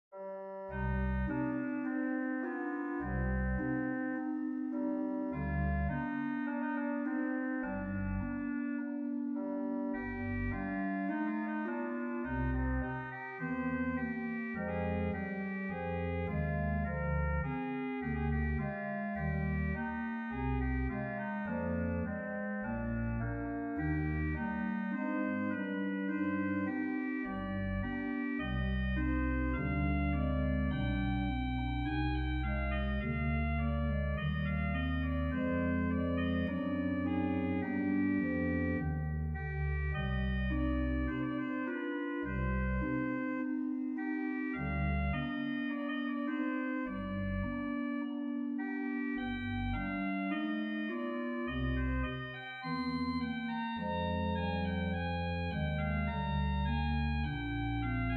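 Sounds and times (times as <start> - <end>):
organ melody on oboe 8' and rohrfloete 8' stops: 0.2 - 58.1.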